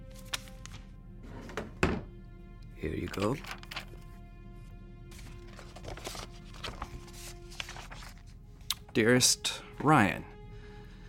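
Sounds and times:
desk drawer sliding open and pushed shut: 1.2s - 2.1s
speech: 2.8s - 3.7s, 9.0s - 10.3s.

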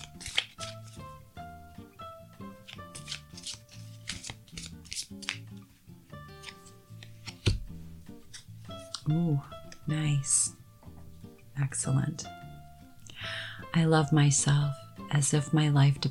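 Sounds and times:
deck of affirmation cards being shuffled: 0.0s - 1.2s, 2.4s - 9.9s
soft tonal music: 0.0s - 16.0s
speech: 9.1s - 10.4s, 11.6s - 12.4s, 13.8s - 16.0s.

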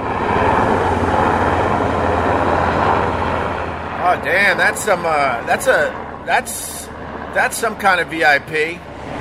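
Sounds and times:
helicopter engine roar overhead: 0.0s - 9.2s
speech: 4.1s - 8.9s.

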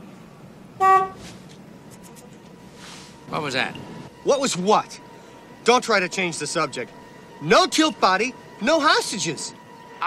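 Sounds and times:
single short loud car horn blast: 0.8s - 1.3s
speech: 3.3s - 5.0s, 5.6s - 10.0s.

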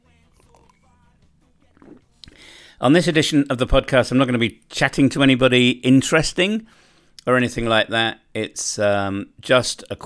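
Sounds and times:
faint mouth noises: 0.2s - 2.4s
slurping sip of herbal tea from an old army mug: 0.3s - 0.9s, 1.7s - 2.4s
soft swallow: 1.8s - 2.4s
speech: 2.8s - 10.0s.

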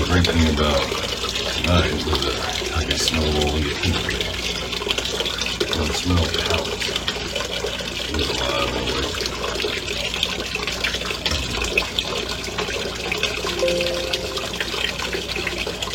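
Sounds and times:
hot water pouring from a tap into a filling bathtub: 0.0s - 15.9s
speech: 0.1s - 1.0s, 1.6s - 4.3s, 5.8s - 7.1s, 8.1s - 9.8s.

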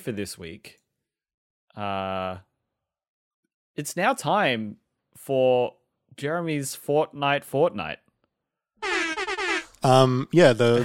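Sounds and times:
speech: 0.0s - 0.8s, 1.8s - 2.5s, 3.8s - 8.0s, 9.8s - 10.8s
air horn sound effect blasts: 8.8s - 9.8s.

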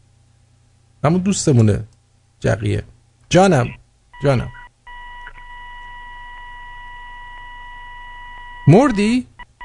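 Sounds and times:
speech: 1.0s - 4.6s, 8.7s - 9.3s
electronic telephone tones: 3.6s - 9.6s.

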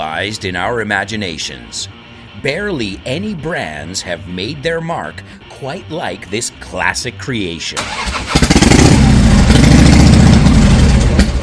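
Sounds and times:
speech: 0.1s - 8.8s
motorcycle engine revving: 7.8s - 11.4s.

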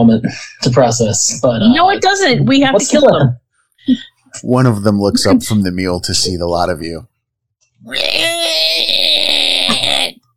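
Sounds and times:
speech: 0.0s - 7.1s, 7.8s - 8.7s
voice imitating a monster's intimidating raspy screech: 7.8s - 10.2s.

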